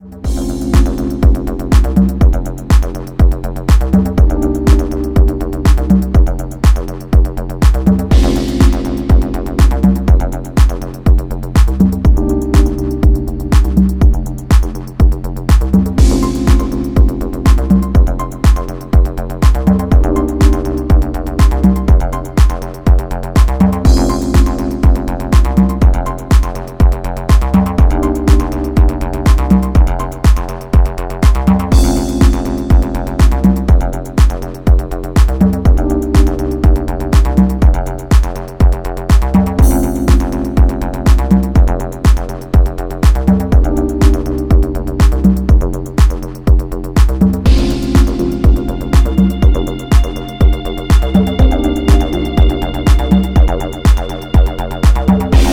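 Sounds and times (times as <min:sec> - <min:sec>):
ambient acid instrumental: 0:00.0 - 0:55.5.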